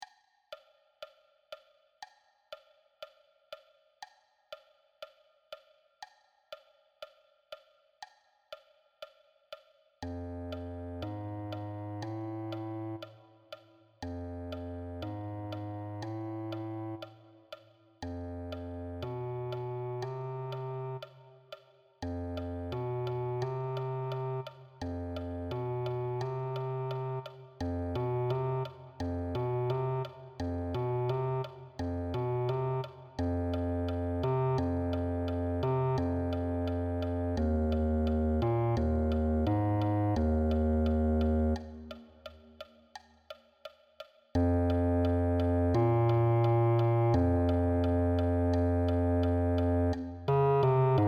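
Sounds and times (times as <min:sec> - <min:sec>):
bass clarinet: 0:10.1 - 0:13.1, 0:14.0 - 0:17.1, 0:18.0 - 0:21.2, 0:22.0 - 0:42.0, 0:44.4 - 0:51.0.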